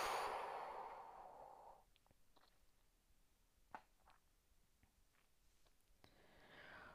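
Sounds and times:
slow airy exhale of breath: 0.0 - 1.8, 6.1 - 6.9.

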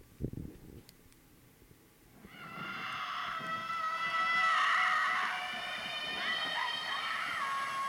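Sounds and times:
crowd of people screaming outdoors: 2.2 - 7.8.

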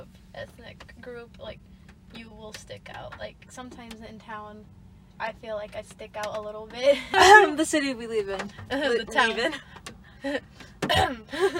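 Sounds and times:
speech: 0.4 - 11.5
person clearing throat: 10.8 - 11.5.

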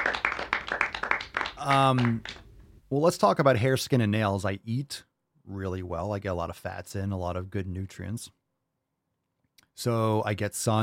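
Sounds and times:
people clapping: 0.0 - 2.5
speech: 1.6 - 8.4, 9.8 - 10.8.

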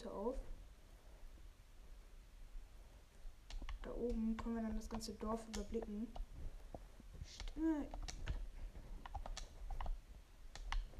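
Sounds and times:
speech: 0.0 - 0.6, 3.8 - 6.3, 7.3 - 8.3
low hum: 0.0 - 10.9
Xbox game controller buttons clicking: 3.5 - 6.3, 7.3 - 8.4, 9.0 - 10.9.

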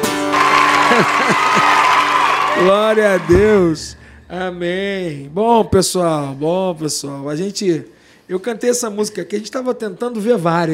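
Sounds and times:
audience applauding: 0.0 - 3.7
laughter: 0.7 - 2.0
speech: 1.0 - 1.6, 2.6 - 10.7.

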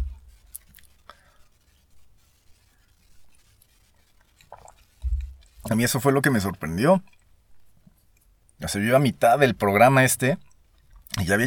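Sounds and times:
dull low thud of a cup set down: 0.0 - 0.5, 5.0 - 5.7
sipping coffee: 4.3 - 5.0
speech: 5.7 - 7.2, 8.7 - 10.4, 11.1 - 11.4.

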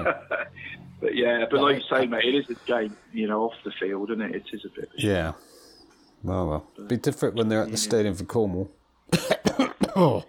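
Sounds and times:
speech: 1.2 - 5.5, 6.2 - 10.2
harsh coughs ending in a rasping throaty hack: 9.1 - 10.2.

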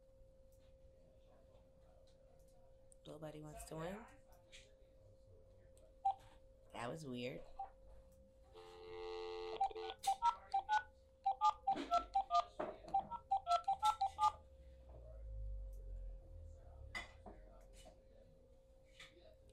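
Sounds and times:
speech: 3.1 - 4.2, 6.8 - 7.5
quick touch-tone phone-call dialing beeps: 8.6 - 14.4.

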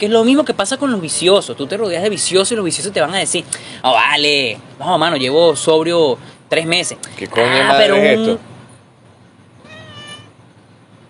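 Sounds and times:
speech: 0.0 - 8.5
steady hiss: 0.0 - 11.0
cat meowing: 9.6 - 10.4.

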